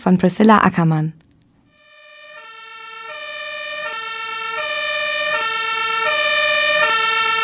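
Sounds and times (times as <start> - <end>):
speech: 0.0 - 1.2
two-tone fire engine siren: 1.7 - 7.4.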